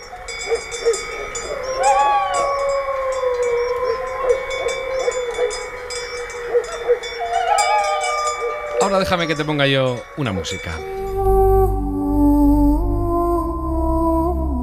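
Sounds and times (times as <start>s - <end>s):
distant dog barking: 0.0s - 10.2s
livestock bells ringing: 0.0s - 11.2s
wolf howling: 0.0s - 14.6s
speech: 8.9s - 11.4s.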